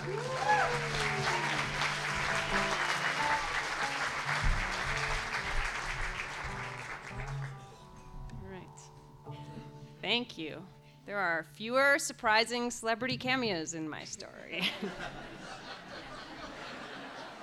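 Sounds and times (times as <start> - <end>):
speech: 0.0 - 0.5, 10.1 - 15.6
crowd clapping: 0.0 - 7.8
laughter: 14.6 - 17.4.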